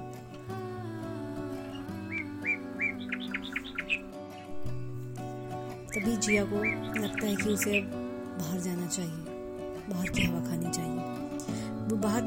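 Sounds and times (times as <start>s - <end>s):
sustained musical tones: 0.0s - 12.2s
short bright bird chirps: 1.5s - 4.7s, 5.9s - 8.7s
speech: 6.0s - 9.3s, 9.9s - 11.2s, 11.9s - 12.2s.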